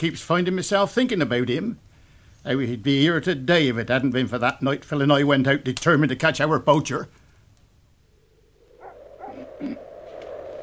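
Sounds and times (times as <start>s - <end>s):
speech: 0.0s - 1.8s, 2.4s - 7.2s
dog barking: 8.7s - 10.4s.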